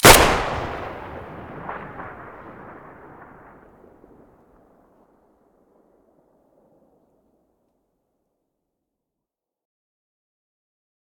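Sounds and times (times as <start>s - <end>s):
rifle gunshots recorded at the muzzle in stereo: 0.0s - 3.7s.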